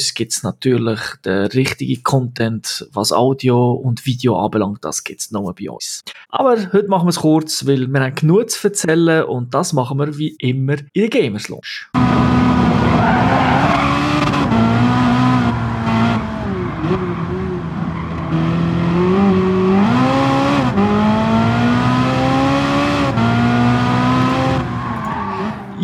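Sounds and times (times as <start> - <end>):
speech: 0.2 - 12.0
racing video game car engines whining and roaring: 12.0 - 25.8
racing video game car tires screeching: 12.0 - 25.8.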